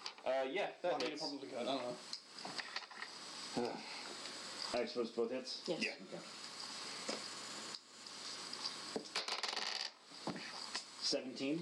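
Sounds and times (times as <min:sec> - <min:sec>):
speech: 0:00.2 - 0:02.6, 0:03.6 - 0:03.9, 0:04.7 - 0:06.4, 0:11.1 - 0:11.6
dice rolled across a hard tabletop: 0:09.1 - 0:10.0.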